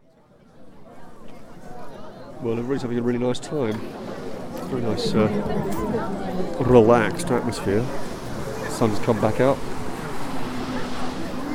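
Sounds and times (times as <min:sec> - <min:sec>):
faint voices: 0:00.0 - 0:11.5
wind: 0:00.0 - 0:11.5
speech: 0:02.4 - 0:08.1, 0:08.8 - 0:09.7
lapping waves: 0:02.5 - 0:11.5
low motor hum from boats on the water: 0:03.6 - 0:11.5.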